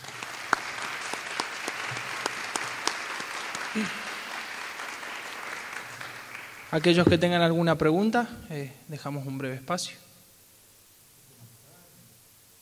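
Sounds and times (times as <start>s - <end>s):
lecture audience applauding at the close of a conference talk: 0.0s - 7.0s
speech: 3.8s - 4.0s, 6.7s - 10.0s.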